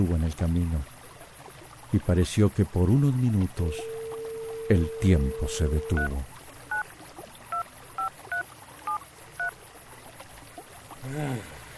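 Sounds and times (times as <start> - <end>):
speech: 0.0 - 1.0, 1.9 - 4.0, 4.7 - 6.4, 11.1 - 11.6
telephone keypad tones while dialing a call: 3.6 - 6.8, 8.0 - 9.5.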